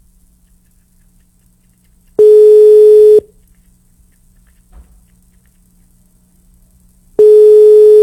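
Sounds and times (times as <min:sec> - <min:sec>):
unanswered telephone call ringing tone: 0:02.2 - 0:03.3, 0:07.2 - 0:08.0.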